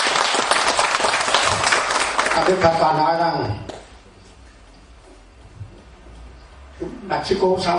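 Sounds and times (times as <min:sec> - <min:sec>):
crowd applauding: 0:00.0 - 0:03.0
speech: 0:02.4 - 0:03.7, 0:06.8 - 0:07.7.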